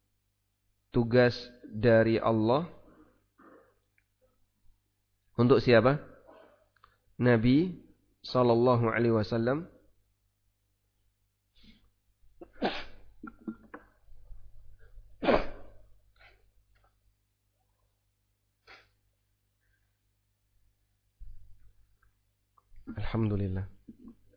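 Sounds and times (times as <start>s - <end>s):
speech: 0.9s - 2.8s, 5.4s - 6.1s, 7.2s - 9.7s
person sneezing: 12.4s - 13.8s, 15.2s - 15.8s, 18.6s - 19.0s.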